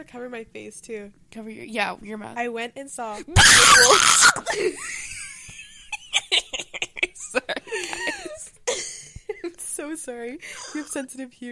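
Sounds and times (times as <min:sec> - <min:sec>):
speech: 0:00.0 - 0:05.1, 0:09.8 - 0:11.5
shrill piercing blood-curdling scream: 0:03.4 - 0:04.5.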